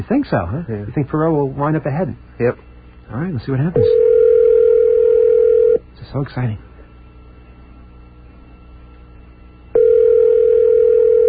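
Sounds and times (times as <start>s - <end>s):
speech: 0.0s - 4.2s, 6.1s - 6.7s
telephone ringback tone on an outgoing call: 3.8s - 5.8s, 9.8s - 11.2s.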